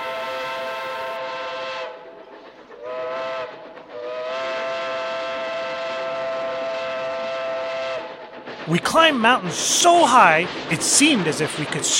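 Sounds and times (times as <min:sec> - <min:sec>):
train steam whistle in cold dark forest wilderness: 0:00.0 - 0:02.2, 0:02.8 - 0:08.3
train rumbling through cold dark forest wilderness: 0:00.0 - 0:11.9
speech: 0:08.7 - 0:11.9.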